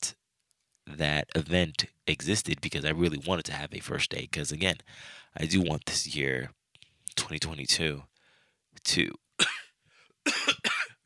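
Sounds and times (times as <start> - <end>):
speech: 0.9 - 6.6, 7.2 - 8.1, 8.8 - 9.2
harsh coughs from a person feeling under the weather: 9.4 - 11.0.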